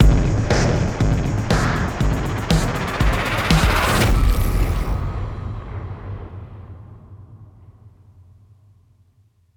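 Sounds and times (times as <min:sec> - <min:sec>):
drum riser: 0:00.0 - 0:07.0.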